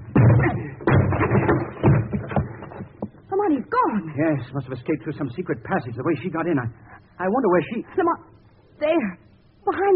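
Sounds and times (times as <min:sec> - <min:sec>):
door being battered and forced: 0:00.0 - 0:03.1
speech: 0:03.5 - 0:09.9.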